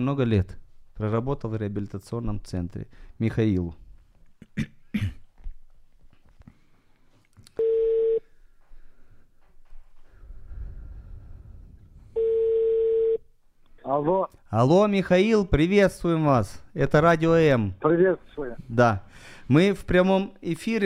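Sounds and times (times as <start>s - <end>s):
speech: 0.0s - 3.8s, 4.5s - 5.2s, 14.0s - 20.8s
person coughing: 4.4s - 5.3s
long steady telephone ringback tones: 7.6s - 8.2s, 12.2s - 13.2s
faint low rumbling: 10.0s - 12.5s.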